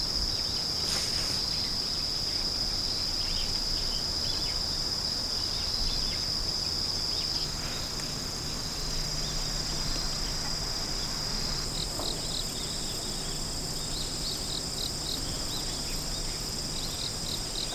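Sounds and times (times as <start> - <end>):
insect singing with a shrill sustained buzz: 0.0 - 17.7
low rumbling background noise: 0.0 - 17.7.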